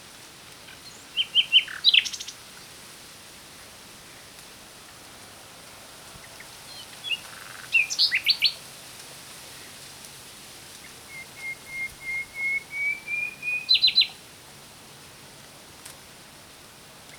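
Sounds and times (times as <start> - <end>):
quiet background hiss: 0.0 - 17.1
common nightingale Luscinia megarhynchos song: 0.7 - 2.4, 6.4 - 8.6, 11.1 - 14.2.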